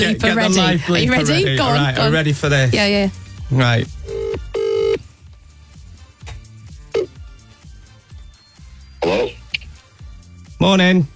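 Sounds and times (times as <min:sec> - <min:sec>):
speech: 0:00.0 - 0:04.4, 0:09.0 - 0:09.4, 0:10.6 - 0:11.1
outgoing telephone call ringing tone: 0:04.1 - 0:05.0.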